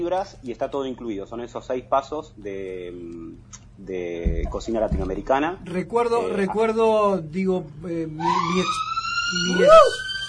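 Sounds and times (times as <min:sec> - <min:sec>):
speech: 0:00.0 - 0:10.1
wailing emergency vehicle siren outside: 0:07.9 - 0:10.2.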